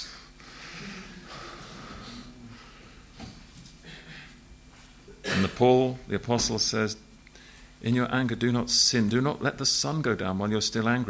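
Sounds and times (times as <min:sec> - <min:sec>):
voice imitating deep heavy mechanical breathing: 0:00.0 - 0:03.1
speech: 0:05.4 - 0:07.1, 0:07.8 - 0:11.0.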